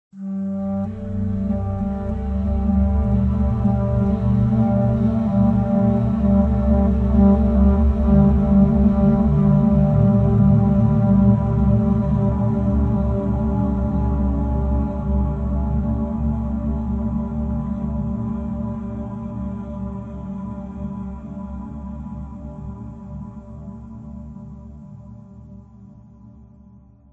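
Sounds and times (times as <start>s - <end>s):
atmospheric mystery flute music: 0.2s - 23.4s.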